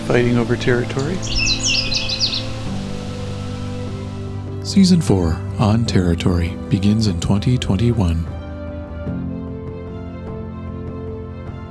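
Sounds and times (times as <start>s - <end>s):
Canada warbler song: 0.0s - 5.7s
speech: 0.1s - 1.6s, 4.7s - 8.4s.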